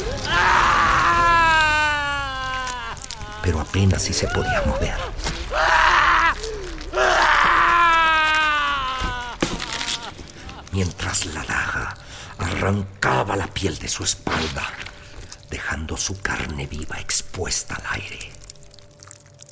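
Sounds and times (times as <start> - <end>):
man screaming in agony: 0.0 - 10.6
speech: 3.5 - 5.7, 10.8 - 11.9, 12.5 - 14.9, 15.5 - 18.4.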